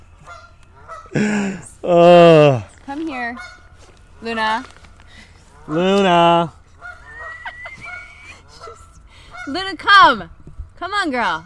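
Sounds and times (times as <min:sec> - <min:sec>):
angry geese honking while chasing a dog: 0:00.1 - 0:01.4, 0:03.0 - 0:04.6, 0:05.4 - 0:10.1
speech: 0:01.1 - 0:02.6, 0:04.2 - 0:04.8, 0:05.7 - 0:06.6, 0:09.5 - 0:11.4.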